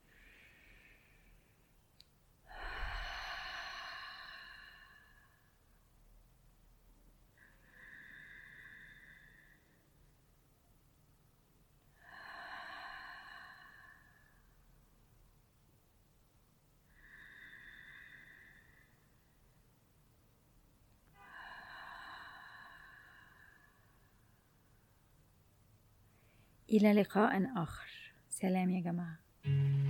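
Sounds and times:
slow deep breaths into the microphone: 0.0s - 5.8s, 7.3s - 10.2s, 11.9s - 14.9s, 16.8s - 19.7s, 21.0s - 25.3s, 26.0s - 26.7s
speech: 26.7s - 29.7s.

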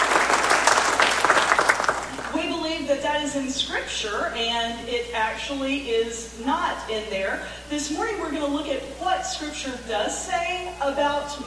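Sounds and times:
audience clapping: 0.0s - 2.5s
speech: 2.9s - 11.4s.

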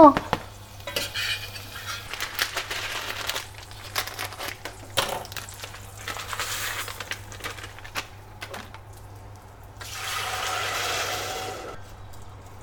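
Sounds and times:
garlic sizzling in a frying pan: 0.0s - 11.7s
utensil scraping and clattering in a frying pan while stirring garlic: 0.9s - 3.0s.

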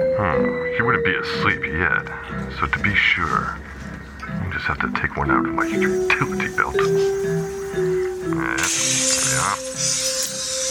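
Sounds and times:
speech: 0.2s - 10.0s
steady low droning background: 0.2s - 10.7s
small glass vial of gas shattering inside an apartment: 8.6s - 10.7s.

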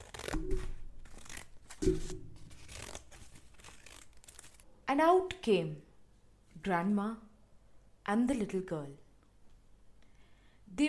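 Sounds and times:
scissors cutting open a belly: 0.0s - 4.6s
speech: 4.9s - 5.9s, 6.6s - 7.3s, 8.1s - 9.0s.

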